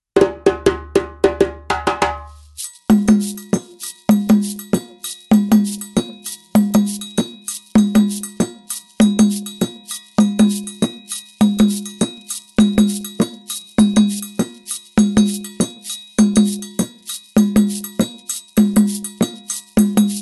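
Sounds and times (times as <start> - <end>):
kenkeni dundun drum: 0.2 - 20.2.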